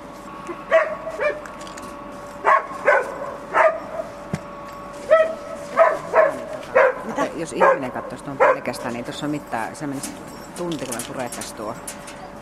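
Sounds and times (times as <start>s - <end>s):
search dog barking softly in a tent hall: 0.7s - 1.4s, 2.4s - 4.0s, 5.1s - 8.7s
search dog whimpering in a tent hall: 5.8s - 7.8s
speech: 7.5s - 12.2s.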